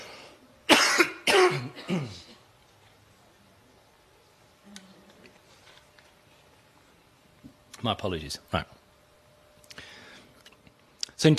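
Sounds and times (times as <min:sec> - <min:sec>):
person coughing: 0:00.7 - 0:02.5
speech: 0:07.8 - 0:08.8.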